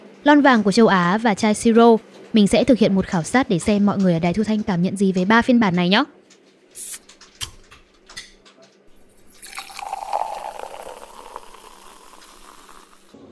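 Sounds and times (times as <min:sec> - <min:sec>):
speech: 0:00.2 - 0:06.2
Red Bull energy drink pouring into cups in an office: 0:09.0 - 0:13.2
soft hiss of energy drink bubbles: 0:09.1 - 0:13.2.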